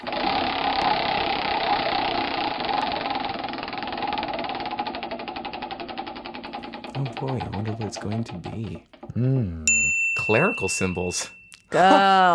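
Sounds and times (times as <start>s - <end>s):
prize wheel spinning with mechanical whir and ticking clicks: 0.0s - 9.1s
speech: 7.0s - 12.3s.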